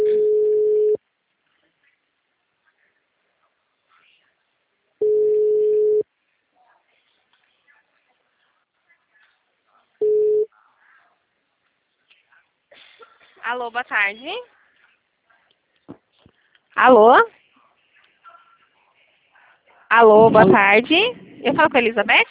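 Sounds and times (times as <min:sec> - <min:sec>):
telephone ringing tone beeps while a call is placed: 0:00.0 - 0:01.0, 0:05.0 - 0:06.0, 0:10.0 - 0:10.5
faint small noises: 0:00.0 - 0:22.3
speech: 0:13.5 - 0:14.6, 0:16.8 - 0:17.4, 0:19.9 - 0:22.3.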